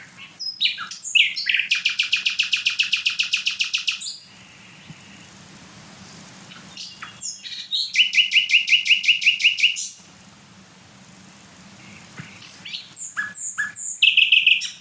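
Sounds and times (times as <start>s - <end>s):
small songbird singing loud whistled notes and trills: 0.0s - 5.0s, 6.5s - 10.0s, 11.8s - 14.7s.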